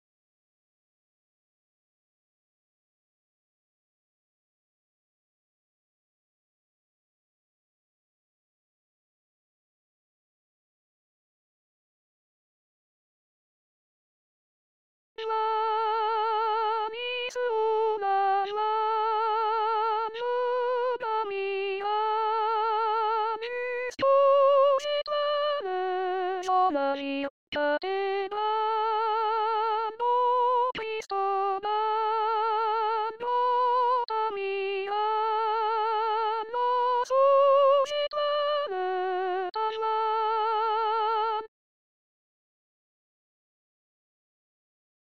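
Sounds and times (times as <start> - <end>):
soprano singing a chorale: 15.2 - 41.5.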